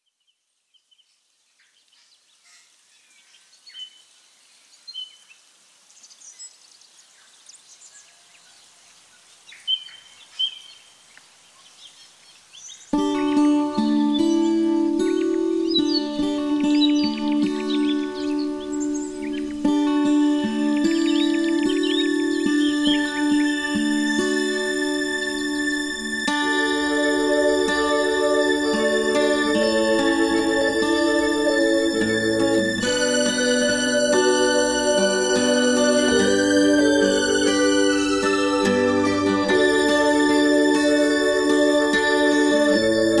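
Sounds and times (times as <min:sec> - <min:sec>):
ambient melody: 0:13.0 - 0:43.1.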